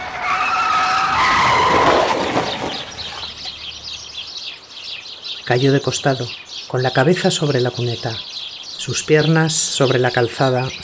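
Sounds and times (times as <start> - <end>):
car tyres skidding and squealing at a street crossing: 0.0 - 3.8
car engine rushing: 0.0 - 4.3
speech: 5.5 - 10.8.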